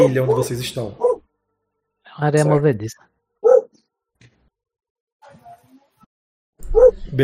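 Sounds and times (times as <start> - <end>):
speech: 0.0 - 1.0, 2.2 - 3.1
dog barking: 1.0 - 1.2, 3.4 - 3.8, 6.7 - 7.0.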